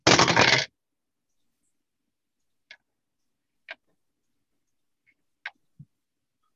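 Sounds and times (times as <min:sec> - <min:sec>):
dice rattling and tumbling on a hard table: 0:00.1 - 0:00.7.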